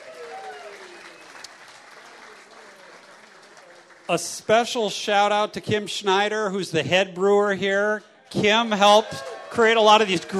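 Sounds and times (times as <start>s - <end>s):
audience clapping: 0.0s - 5.6s, 8.6s - 10.3s
speech: 4.1s - 10.3s.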